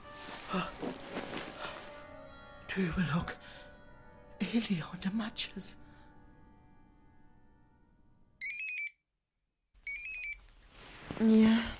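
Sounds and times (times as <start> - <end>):
speech: 0.5 - 0.8, 2.8 - 3.6, 4.5 - 5.8, 11.2 - 11.7
alarm clock ringing in shrill electronic bursts: 8.4 - 9.0, 9.9 - 10.4.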